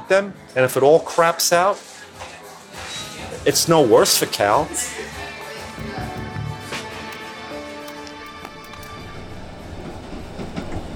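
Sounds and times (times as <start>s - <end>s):
speech: 0.1s - 1.9s, 3.4s - 5.2s
passenger train clattering along the rails, heard from inside the carriage: 8.8s - 10.9s.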